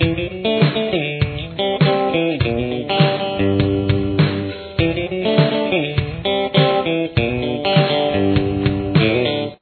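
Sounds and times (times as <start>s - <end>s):
guitar interlude: 0.0s - 9.5s.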